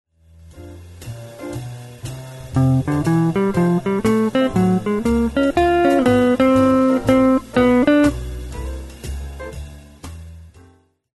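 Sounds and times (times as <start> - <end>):
jazz blues guitar: 1.5 - 8.9.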